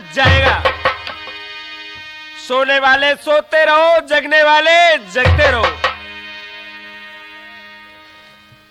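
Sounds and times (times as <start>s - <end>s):
clock ticking: 0.3s - 1.3s
speech: 2.5s - 5.8s.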